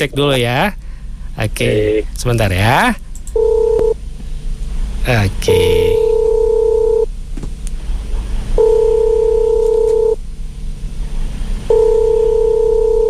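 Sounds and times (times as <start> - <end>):
speech: 0.0 - 0.8, 1.4 - 3.0, 5.0 - 5.9
low hiss: 0.0 - 13.0
telephone ringing tone beeps while calling a listener: 3.4 - 3.9, 6.0 - 7.0, 8.6 - 10.2, 11.7 - 13.0.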